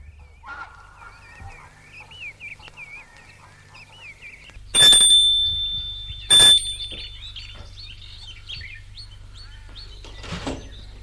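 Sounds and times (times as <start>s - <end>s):
birds chirping and twittering outdoors: 0.0s - 11.0s
buzzy doorbell rings at front door: 4.8s - 7.7s.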